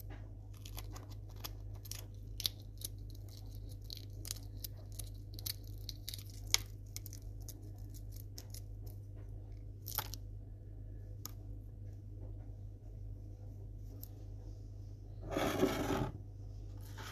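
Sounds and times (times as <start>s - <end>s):
steady low hum: 0.0s - 17.1s
crisp crackles and snaps of crunchy sandwiches: 0.5s - 9.1s, 9.7s - 10.2s.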